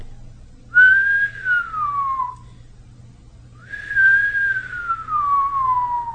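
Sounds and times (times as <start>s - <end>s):
faint low hum: 0.0s - 6.1s
long thin delicate human whistles sliding downward in pitch: 0.8s - 2.4s, 3.6s - 6.1s.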